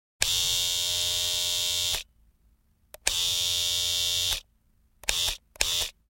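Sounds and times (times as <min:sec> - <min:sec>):
household electric shaver switching on and off: 0:00.2 - 0:02.0, 0:03.0 - 0:04.4, 0:05.0 - 0:06.0.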